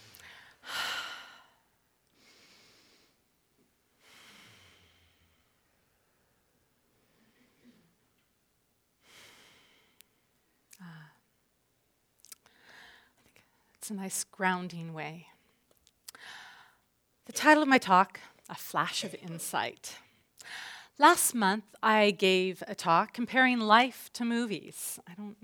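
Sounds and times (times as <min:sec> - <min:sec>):
slow deep relaxing breaths: 0:00.0 - 0:03.3, 0:03.9 - 0:08.1, 0:09.0 - 0:11.3, 0:12.4 - 0:13.8, 0:15.4 - 0:16.9, 0:20.0 - 0:21.0
speech: 0:13.9 - 0:15.3, 0:17.3 - 0:25.4.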